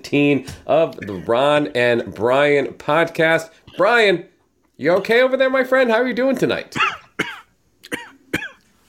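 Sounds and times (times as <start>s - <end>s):
speech: 0.1s - 7.0s
dry cough: 6.8s - 8.6s.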